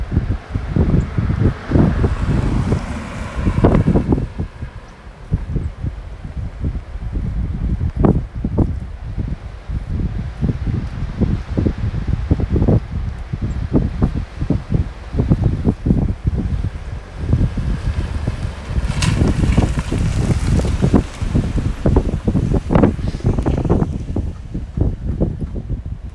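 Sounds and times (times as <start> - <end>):
wind on a gravel road: 0.0 - 26.1
cars on a gravel road: 0.2 - 7.5, 13.8 - 26.1.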